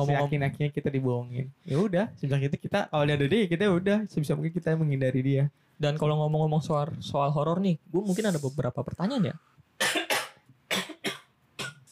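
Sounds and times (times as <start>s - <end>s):
speech: 0.0s - 10.0s
person coughing harshly: 9.8s - 11.8s.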